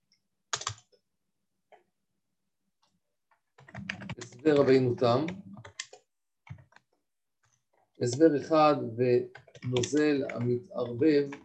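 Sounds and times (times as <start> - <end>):
quiet keystrokes on a computer keyboard: 0.5 - 0.9, 3.6 - 6.9, 9.3 - 11.4
speech: 4.4 - 5.5, 8.0 - 11.4.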